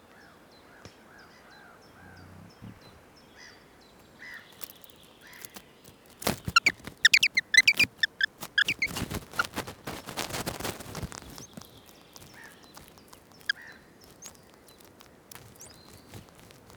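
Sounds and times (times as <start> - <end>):
Eurasian wren Troglodytes troglodytes giving hard clicking ticks: 4.0 - 16.7.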